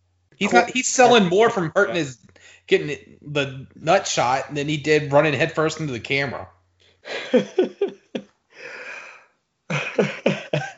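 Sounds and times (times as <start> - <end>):
speech: 0.3 - 8.0
person laughing in breathy bursts: 0.4 - 2.1, 7.1 - 10.7.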